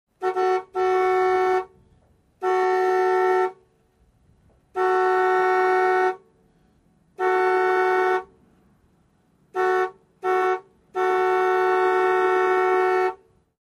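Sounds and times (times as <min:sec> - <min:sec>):
car horn honk: 0:00.1 - 0:03.7, 0:04.7 - 0:06.4, 0:07.2 - 0:08.4, 0:09.5 - 0:13.4.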